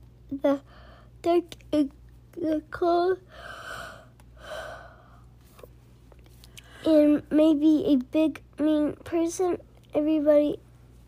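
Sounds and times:
low steady hum: 0.0s - 11.0s
speech: 0.3s - 3.9s, 6.8s - 10.6s
deep breath: 0.7s - 1.2s, 3.3s - 5.3s.

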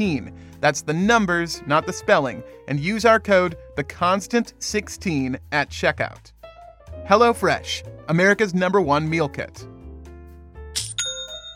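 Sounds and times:
speech: 0.0s - 6.4s, 7.1s - 9.7s
online store sale notification chime: 10.9s - 11.5s.

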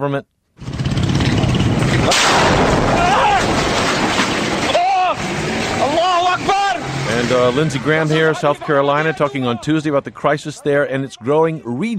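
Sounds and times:
speech: 0.0s - 0.7s, 2.1s - 3.5s, 5.2s - 11.9s
explosions in combat between government forces and opposition fighters: 1.4s - 5.9s
heavy gunfire in combat between government forces and opposition fighters: 1.6s - 5.8s
men shouting over gunfire in combat: 2.9s - 3.6s, 4.7s - 9.8s.

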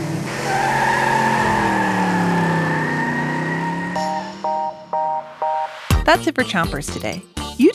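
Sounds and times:
self-driving car driving past with whirring hum and whine: 0.0s - 5.4s
short electronic beeps: 3.9s - 6.0s
speech: 6.1s - 7.7s.

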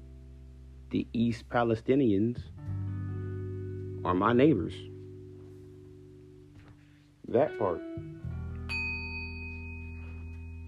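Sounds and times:
speech: 0.9s - 2.7s, 4.0s - 4.9s, 7.3s - 8.2s
loud bell ringing: 8.7s - 10.6s.

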